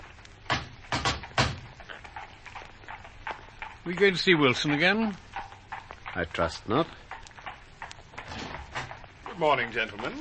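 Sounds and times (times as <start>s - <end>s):
door being tried with rattling thuds: 0.5s - 1.7s
speech: 3.9s - 5.2s, 6.2s - 7.0s, 9.4s - 10.1s.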